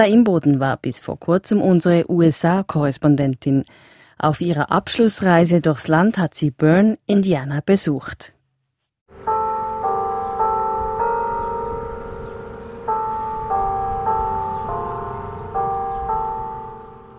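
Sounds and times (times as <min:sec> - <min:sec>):
speech: 0:00.0 - 0:08.4
clock tower carillon played from a loudspeaker: 0:09.1 - 0:17.1.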